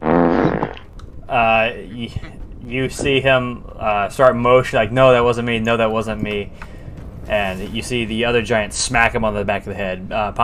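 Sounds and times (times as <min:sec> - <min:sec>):
voice imitating a loud buzzy fart with a raspberry: 0:00.0 - 0:00.9
speech: 0:01.3 - 0:10.4.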